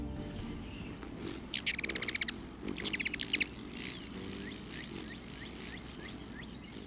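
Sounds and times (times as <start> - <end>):
bird calling in high-pitched chirping trills: 0.1 - 6.8.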